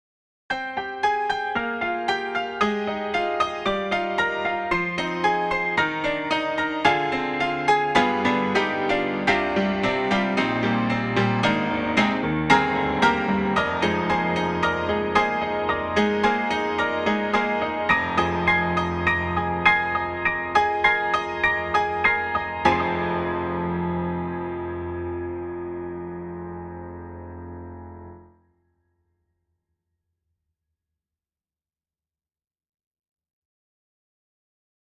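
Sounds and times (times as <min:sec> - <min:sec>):
piano hand octaves: 0:00.5 - 0:28.4.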